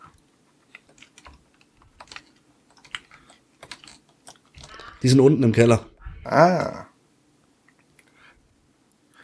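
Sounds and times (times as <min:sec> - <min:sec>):
computer mouse clicking: 0:00.1 - 0:04.9
computer keyboard clicking: 0:00.7 - 0:04.9
speech: 0:05.0 - 0:06.9.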